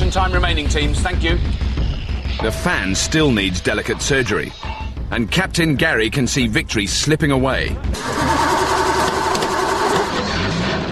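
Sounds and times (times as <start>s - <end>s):
speech: 0.1s - 1.6s, 2.3s - 8.4s
small engine running, driving a conveyor axle: 8.0s - 10.6s.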